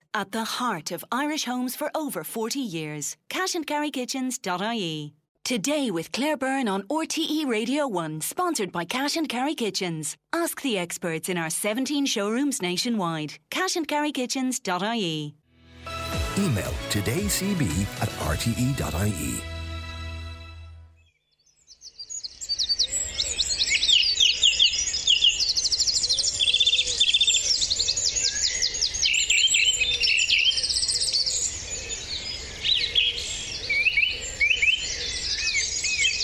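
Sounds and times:
speech: 0.2s - 15.4s, 16.1s - 19.5s
dense dawn chorus of many birds singing at a nature reserve: 21.1s - 36.2s.

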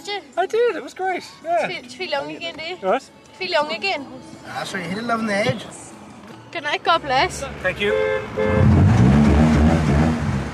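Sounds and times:
speech: 0.0s - 5.8s, 6.5s - 8.9s
car engine revving in a car park: 6.8s - 10.5s.

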